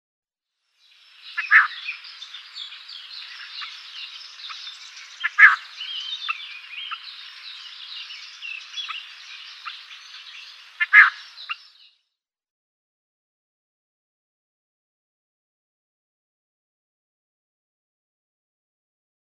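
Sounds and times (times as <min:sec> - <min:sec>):
Cape Verde Swamp-Warbler calls: 0:00.8 - 0:11.9.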